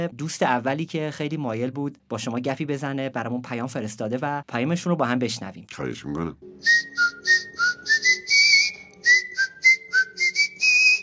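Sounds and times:
speech: 0.0 - 7.5
person whistling an evening radio program theme tune: 6.6 - 11.0.

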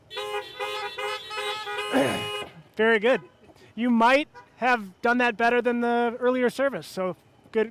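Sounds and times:
car horns honking in a church parking lot: 0.0 - 3.6, 4.2 - 4.8
speech: 1.9 - 7.6.

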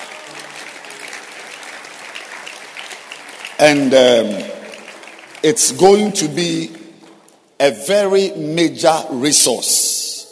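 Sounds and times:
conference audience clapping hands: 0.0 - 7.4
speech: 3.6 - 4.5, 5.4 - 6.8, 7.6 - 9.9.

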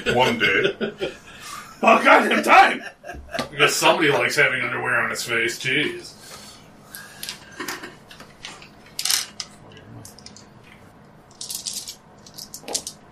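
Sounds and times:
laughter: 0.0 - 4.4, 7.3 - 8.2
speech: 0.0 - 6.2
low hum: 0.0 - 13.1
dice clattering and rattling: 11.3 - 13.0.

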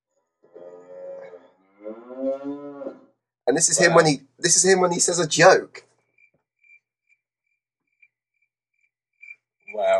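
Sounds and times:
cow mooing: 0.4 - 3.2
speech: 3.5 - 5.9.

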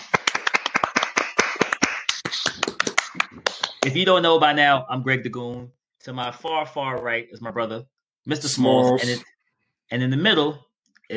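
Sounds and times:
few people applauding with hand claps: 0.0 - 4.0
speech: 3.8 - 9.3, 9.9 - 11.1.

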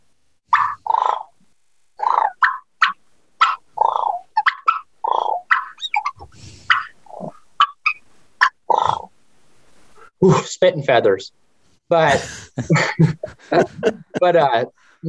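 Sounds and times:
turkey purrs and clucks contentment call on a hand-held game call: 0.5 - 1.4, 2.0 - 9.1
speech: 10.2 - 15.0
laughter: 12.0 - 14.7.

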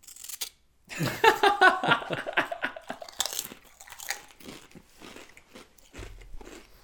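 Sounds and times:
laughter: 0.9 - 3.1
crunching on burger-flavoured wavy potato chips: 2.9 - 6.8.

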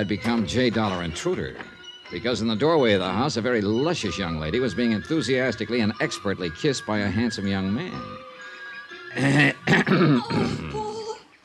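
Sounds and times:
speech: 0.0 - 8.2, 9.2 - 10.8
man giving a loud deliberate cough: 9.2 - 10.8.

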